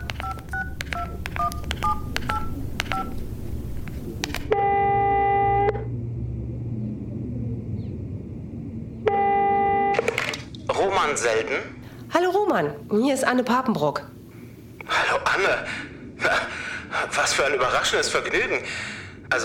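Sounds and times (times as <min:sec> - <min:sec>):
electronic ring tones through a phone loudspeaker: 0:00.0 - 0:03.2
mobile phone keypad tones: 0:00.0 - 0:04.6
low rumble: 0:00.0 - 0:19.4
speech: 0:11.1 - 0:14.2, 0:14.9 - 0:16.4, 0:17.0 - 0:19.4.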